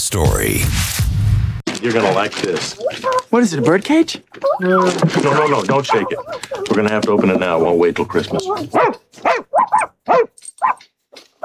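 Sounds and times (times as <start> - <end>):
speech: 0.0 - 10.8
puppy barking in short high yaps: 2.8 - 3.3, 5.7 - 6.8, 7.4 - 10.8.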